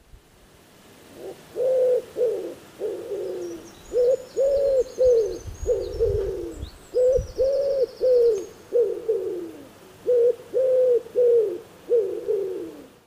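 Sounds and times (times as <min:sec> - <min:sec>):
wood pigeon cooing song: 0:01.1 - 0:13.0
faint higher bird chirps: 0:03.2 - 0:09.5.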